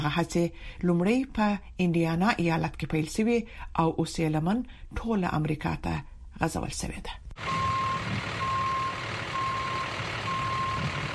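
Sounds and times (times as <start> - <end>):
speech: 0.0 - 8.3
constant low truck engine rumble: 7.4 - 11.1
truck reversing beeps during parking practice on a street in the Bronx, New York: 7.4 - 11.1.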